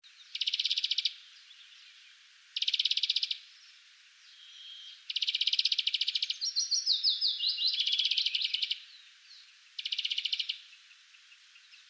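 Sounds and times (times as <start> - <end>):
Chloris chloris European greenfinch buzzy rattling trills: 0.2 - 1.2, 2.6 - 3.5, 4.3 - 8.9, 9.8 - 10.7.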